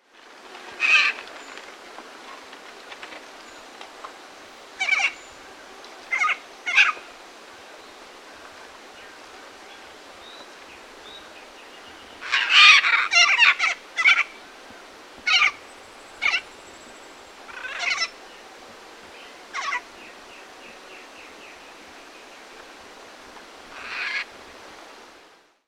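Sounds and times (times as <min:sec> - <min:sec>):
Ara severus calling: 0:04.8 - 0:05.2, 0:06.1 - 0:07.0, 0:12.2 - 0:14.4, 0:15.3 - 0:15.6, 0:17.5 - 0:18.1, 0:19.5 - 0:19.8.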